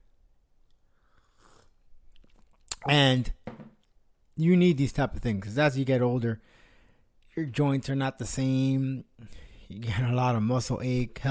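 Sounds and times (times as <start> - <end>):
quick sip of coffee: 0.7 - 2.9
faint mouth sounds: 0.7 - 3.0
speech: 2.8 - 3.4, 4.4 - 6.6, 7.4 - 11.2
sharp little knock: 3.4 - 3.8.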